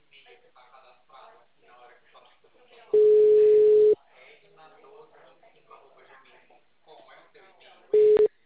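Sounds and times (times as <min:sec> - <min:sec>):
quiet talk: 0:00.0 - 0:08.3
ringback tone of an unanswered phone call: 0:03.0 - 0:04.0, 0:08.0 - 0:08.3.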